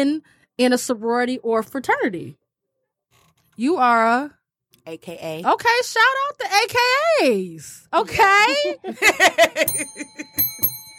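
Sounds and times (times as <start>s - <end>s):
speech: 0.0s - 2.4s, 3.6s - 10.7s
people laughing: 8.5s - 10.3s
small bell ringing: 9.6s - 10.9s.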